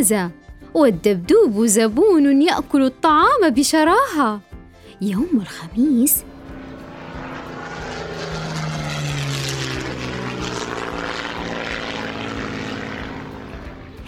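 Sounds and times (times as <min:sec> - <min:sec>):
speech: 0:00.0 - 0:06.3
propeller airplane engine droning overhead: 0:04.8 - 0:14.0.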